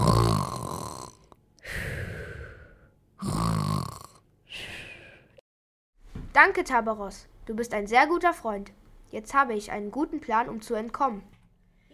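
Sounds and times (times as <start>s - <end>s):
man snoring loudly after drinking a potion and falling over: 0.0s - 5.3s
speech: 6.4s - 11.3s.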